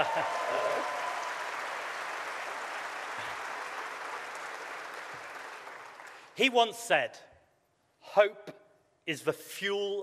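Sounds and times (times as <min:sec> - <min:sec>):
audience at a political speech applauding: 0:00.0 - 0:06.4
speech: 0:06.4 - 0:07.3, 0:08.2 - 0:10.0.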